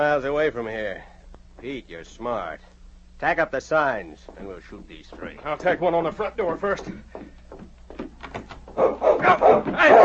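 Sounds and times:
speech: 0.0s - 7.4s
large dog barking as it charges into a cabin room: 8.8s - 10.0s.

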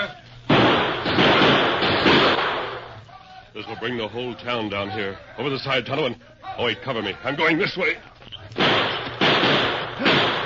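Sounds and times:
gunshots in a shootout at a loaded freight wagon: 0.5s - 3.0s, 8.6s - 10.4s
speech: 3.6s - 8.8s.

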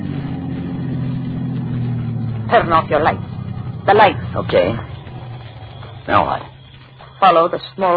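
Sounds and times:
car engine running: 0.0s - 7.9s
speech: 2.5s - 3.3s, 3.9s - 4.9s, 6.1s - 6.5s, 7.2s - 7.9s.

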